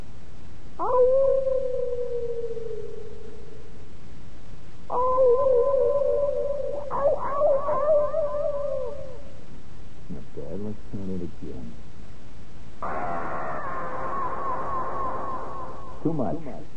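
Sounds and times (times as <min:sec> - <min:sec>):
wild animals howling: 0:00.8 - 0:03.3, 0:04.9 - 0:09.3, 0:12.8 - 0:16.1.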